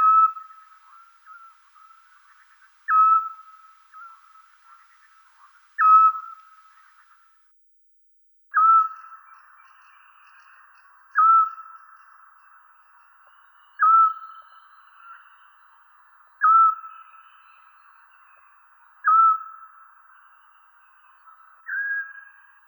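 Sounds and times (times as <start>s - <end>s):
Eurasian scops owl calling with clear mellow whistle: 0.0s - 7.1s, 8.6s - 9.2s, 11.2s - 11.7s, 13.8s - 14.2s, 16.4s - 17.0s, 19.1s - 19.6s.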